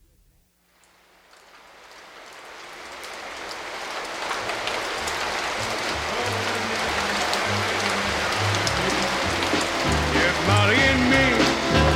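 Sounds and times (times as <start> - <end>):
steady rain falling: 0.6 - 11.9.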